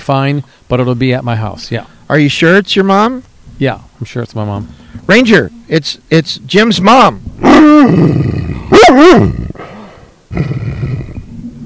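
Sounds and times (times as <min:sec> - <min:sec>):
speech: 0:00.0 - 0:09.4, 0:10.3 - 0:10.6
dog barking and yowling: 0:08.7 - 0:09.4.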